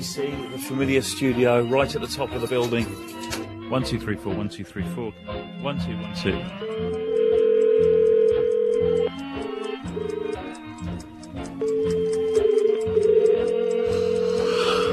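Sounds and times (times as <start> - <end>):
soft music: 0.0 - 14.9
speech: 0.1 - 7.0
faint ticking: 6.5 - 14.9
electronic telephone ringing tone while calling a phone box: 6.8 - 9.2, 11.6 - 14.9.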